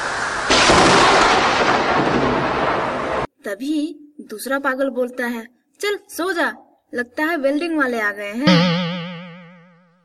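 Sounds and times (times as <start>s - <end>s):
loud crack of thunder rumbling: 0.0s - 3.3s
steady rain: 0.0s - 3.3s
speech: 3.5s - 8.8s.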